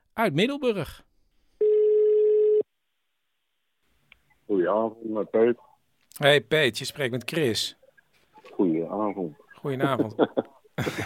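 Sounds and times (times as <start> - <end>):
speech: 0.2 - 1.1, 4.5 - 7.8, 8.5 - 11.0
ringback tone on an outgoing telephone call: 1.6 - 2.6
laughter: 9.7 - 11.0.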